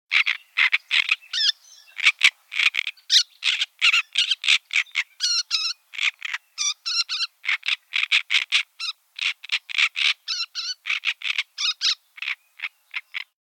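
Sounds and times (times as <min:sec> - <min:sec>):
drozdovidnaya kamyshevka calling: 0:00.1 - 0:13.4.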